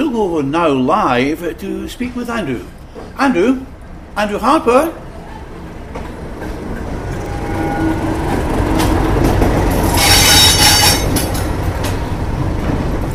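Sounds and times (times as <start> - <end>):
speech: 0.2 - 5.0
heritage railway train rumbling along: 3.7 - 13.1
continuous low roar of train carriages: 5.0 - 13.1
train wheels bright metallic squeal: 6.4 - 11.4.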